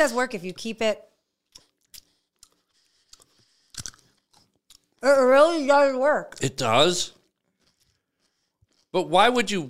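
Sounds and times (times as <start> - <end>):
speech: 0.0 - 1.1, 5.0 - 7.2, 8.9 - 9.6
chewing crunchy candy: 1.5 - 5.0, 7.2 - 8.9.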